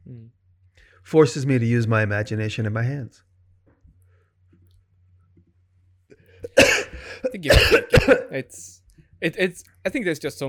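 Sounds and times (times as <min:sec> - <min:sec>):
speech: 0:01.0 - 0:03.3, 0:07.2 - 0:10.4
person coughing: 0:06.4 - 0:08.3.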